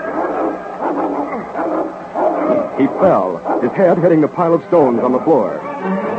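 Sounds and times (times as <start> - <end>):
large Malamute dog barking: 0.0 - 4.2
speech: 2.8 - 6.0.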